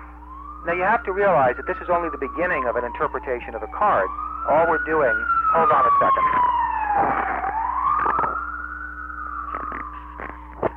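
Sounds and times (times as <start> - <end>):
low constant hum: 0.0 - 10.7
police siren wailing outside: 0.0 - 10.7
speech: 0.6 - 7.3.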